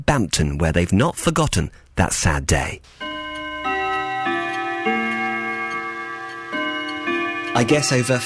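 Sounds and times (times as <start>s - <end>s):
speech: 0.1s - 3.1s, 7.6s - 8.2s
wall clock ticking: 2.1s - 8.2s
wall clock chiming in the old station master's house: 2.9s - 8.2s.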